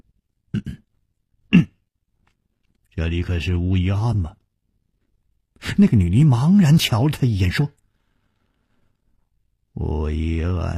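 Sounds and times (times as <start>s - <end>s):
man giving a dry cough and clearing his throat: 0.5s - 0.9s, 1.5s - 1.8s
speech: 3.0s - 4.4s, 5.7s - 7.8s, 9.8s - 10.7s.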